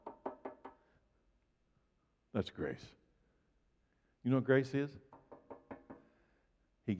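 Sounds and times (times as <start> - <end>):
firm knocking on a door: 0.0 - 0.8, 5.1 - 6.1
speech: 2.3 - 3.0, 4.2 - 5.1.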